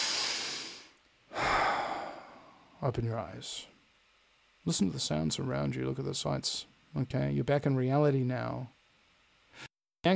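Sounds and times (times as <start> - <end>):
deep breath: 0.0 - 2.7
speech: 2.8 - 3.8, 4.6 - 8.8, 9.6 - 10.1.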